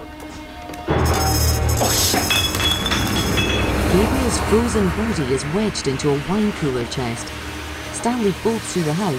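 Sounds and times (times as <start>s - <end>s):
glass bottles clinking in a wine cellar: 0.9s - 4.5s
speech: 4.5s - 9.1s.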